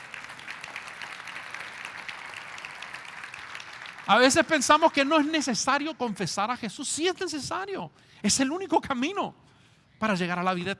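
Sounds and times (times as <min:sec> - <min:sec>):
church audience applauding: 0:00.0 - 0:05.5
speech: 0:04.1 - 0:10.7.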